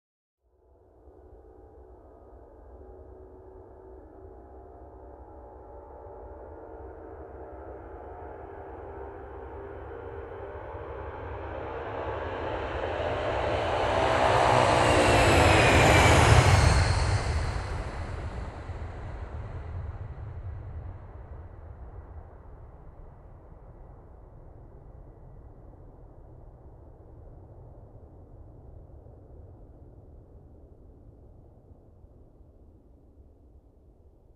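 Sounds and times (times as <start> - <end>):
airliner approaching and lifting off: 10.1 - 21.5.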